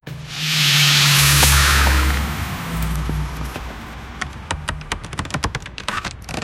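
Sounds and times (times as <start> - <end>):
accident sound effect: 0.0 - 6.3.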